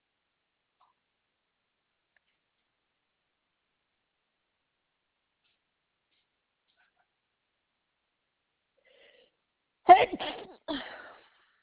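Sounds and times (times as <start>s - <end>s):
person with allergies sneezing during a phone call: 9.9s - 11.3s.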